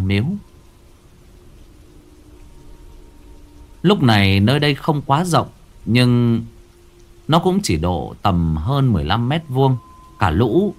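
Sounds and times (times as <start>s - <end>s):
low rumble of thunder: 0.0s - 10.7s
steady rain during a thunderstorm outside a small village shrine: 0.0s - 10.7s
speech: 0.1s - 0.5s, 3.8s - 6.5s, 7.3s - 10.7s.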